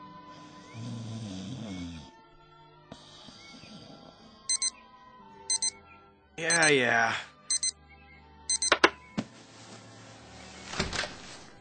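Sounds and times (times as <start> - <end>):
snooze alarm clock high electronic beeping: 4.5 - 4.7, 5.5 - 5.8, 6.5 - 6.8, 7.5 - 7.8, 8.5 - 8.8
speech: 6.4 - 7.3
soft rustling: 9.2 - 11.6.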